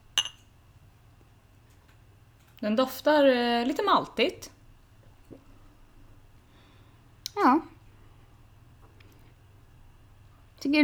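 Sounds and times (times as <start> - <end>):
glasses clinking in a toast with alcohol-free beer: 0.2 - 0.5
speech: 2.6 - 4.6, 7.4 - 7.7, 10.6 - 10.8.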